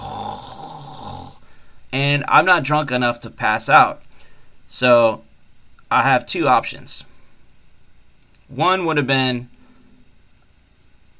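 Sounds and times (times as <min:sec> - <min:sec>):
person imitating a woman's loud snoring: 0:00.0 - 0:01.4
speech: 0:01.9 - 0:04.1, 0:04.7 - 0:05.3, 0:05.9 - 0:07.1, 0:08.5 - 0:09.6.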